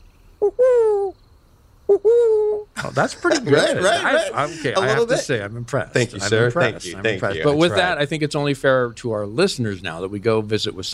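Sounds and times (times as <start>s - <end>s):
person imitating a San Diego burrowing owl call: 0.4s - 1.2s, 1.9s - 5.2s
speech: 1.9s - 10.9s
laughter: 2.8s - 5.4s, 6.0s - 7.9s.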